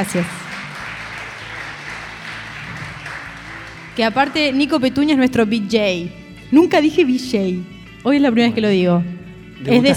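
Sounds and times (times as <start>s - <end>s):
speech: 0.0s - 0.4s, 4.0s - 9.9s
audience applauding in an auditorium during a live show: 0.0s - 5.1s.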